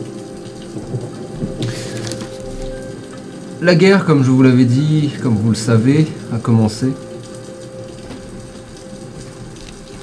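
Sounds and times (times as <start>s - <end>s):
steady rain falling on the golden face of a giant seated Buddha statue: 0.0s - 10.0s
speech: 3.6s - 7.0s.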